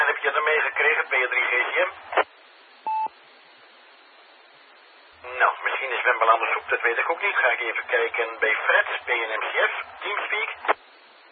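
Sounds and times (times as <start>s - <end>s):
steady low hiss: 0.0s - 11.3s
speech: 0.5s - 2.2s, 5.8s - 10.7s
short mid-pitched telephone line tone as a call is picked up: 2.9s - 3.1s.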